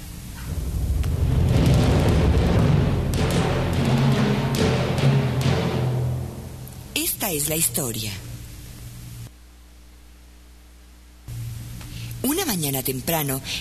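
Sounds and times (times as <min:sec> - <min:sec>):
orchestral timpani and bass drum imitating hunters' gunshots: 0:00.0 - 0:07.0
speech: 0:07.3 - 0:08.3, 0:12.6 - 0:13.5.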